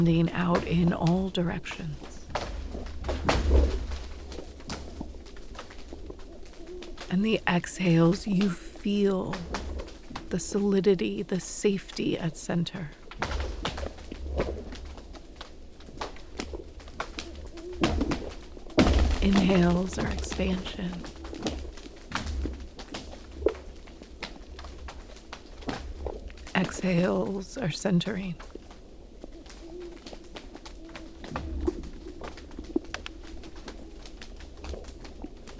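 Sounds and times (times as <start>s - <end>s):
speech: 0.0s - 2.1s, 7.1s - 9.6s, 10.3s - 13.3s, 19.3s - 21.2s, 26.8s - 28.5s
person speaking calmly: 0.0s - 2.3s, 7.1s - 9.7s, 10.3s - 13.0s, 19.2s - 21.1s, 26.4s - 28.4s
owl hooting: 0.0s - 13.6s, 16.5s - 21.8s, 26.0s - 34.0s
faint steady outdoor hum: 0.0s - 35.5s.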